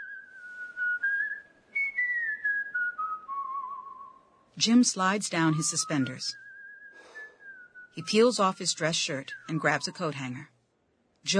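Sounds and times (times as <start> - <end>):
man lying on a bench whistling a slow soft tune: 0.0 - 4.4, 5.7 - 8.2
speech: 4.6 - 6.4, 8.0 - 10.5.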